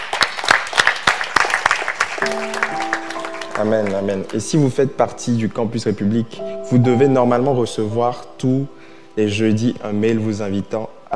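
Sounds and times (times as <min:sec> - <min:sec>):
church audience applauding during a service: 0:00.0 - 0:04.7
speech: 0:02.2 - 0:02.6, 0:03.6 - 0:11.1
sustained organ or keyboard chord: 0:02.2 - 0:11.1.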